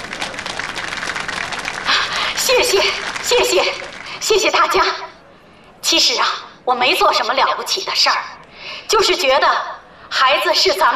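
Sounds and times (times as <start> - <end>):
crowd applauding: 0.0 - 4.8
speech: 2.5 - 5.1, 5.8 - 10.9.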